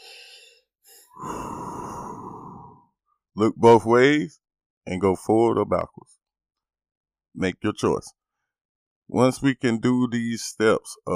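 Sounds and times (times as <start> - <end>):
deep breath: 0.0 - 2.9
speech: 3.4 - 6.1, 7.4 - 8.2, 9.1 - 11.1.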